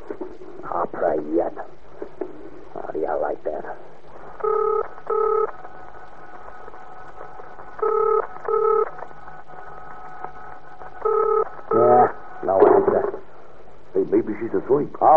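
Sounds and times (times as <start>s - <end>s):
faint steady hum: 0.0s - 15.1s
speech: 0.2s - 1.7s
telephone touch-tone dialing beeps: 4.4s - 5.5s, 7.8s - 8.9s, 11.0s - 12.0s.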